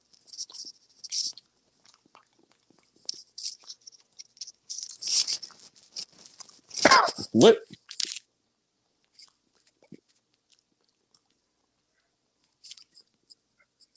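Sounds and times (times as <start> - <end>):
crunchy chewing of cold green beans: 0.0 - 8.2, 9.1 - 11.8
speech: 7.3 - 7.8.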